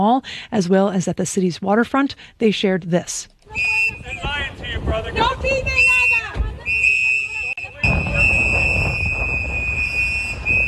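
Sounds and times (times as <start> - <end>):
speech: 0.0 - 6.0
shrill whistles blown by activists at a street arrest: 3.5 - 4.4, 5.6 - 10.6
rumbling street noise: 3.5 - 10.6.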